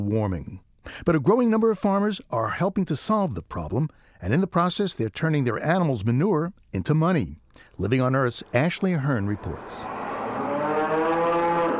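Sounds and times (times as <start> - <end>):
speech: 0.0 - 10.0
dairy cow mooing in a pen at a dairy farm in Vermont: 9.4 - 11.7.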